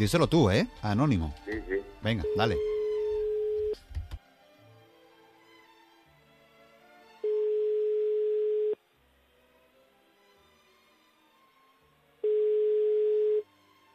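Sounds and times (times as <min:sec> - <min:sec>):
speech: 0:00.0 - 0:02.7
ringback tone of a telephone line ringing while calling a listener: 0:02.2 - 0:03.8, 0:07.3 - 0:08.8, 0:12.2 - 0:13.4.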